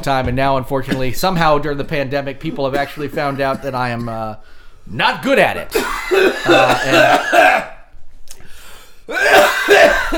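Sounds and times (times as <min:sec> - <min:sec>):
speech: 0:00.0 - 0:07.7
person coughing after water down wrong pipe: 0:02.5 - 0:04.2, 0:05.7 - 0:07.8, 0:09.1 - 0:10.1.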